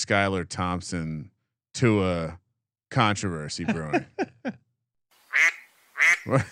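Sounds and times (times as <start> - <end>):
speech: 0.1 - 4.6, 5.4 - 6.5
laughter: 3.6 - 4.6, 6.2 - 6.5
loud nasal duck quacks: 5.3 - 6.5.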